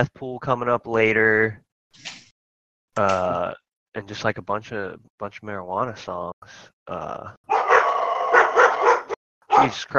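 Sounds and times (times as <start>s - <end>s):
speech: 0.0s - 2.1s, 3.0s - 7.4s, 9.6s - 9.9s
dogs barking: 7.5s - 9.9s.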